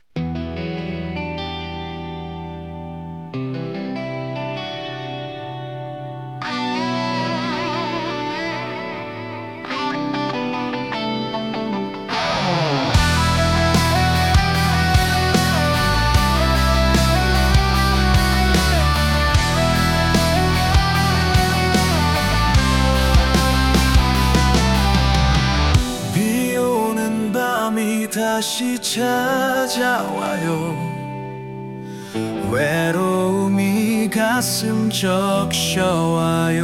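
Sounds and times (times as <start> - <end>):
rock ballad: 0.2 - 36.6.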